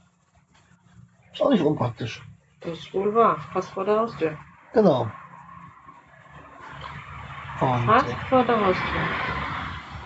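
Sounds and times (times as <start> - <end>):
speech: 1.4 - 5.2, 7.6 - 9.3
cars passing on a nearby street: 2.0 - 10.0.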